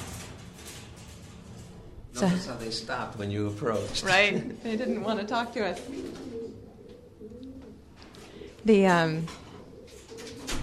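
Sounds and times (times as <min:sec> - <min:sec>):
speech: 0:02.2 - 0:06.4, 0:08.6 - 0:09.4
male and female pigeons cooing softly in a loft: 0:04.5 - 0:08.7, 0:09.3 - 0:10.6
loud throaty pigeon coo: 0:05.8 - 0:08.5, 0:09.4 - 0:10.6.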